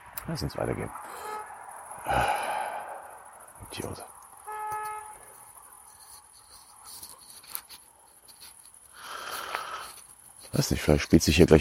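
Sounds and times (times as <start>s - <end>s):
street traffic noise: 0.0s - 11.5s
speech: 0.3s - 1.4s, 2.0s - 2.5s, 3.7s - 4.1s, 10.5s - 11.5s
car horn honking: 1.1s - 1.6s, 4.4s - 5.4s.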